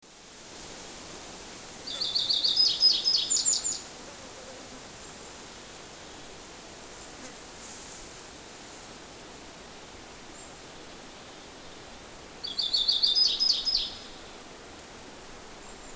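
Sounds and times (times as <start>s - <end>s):
Emberiza rutila singing: 1.9s - 3.8s, 12.4s - 14.4s.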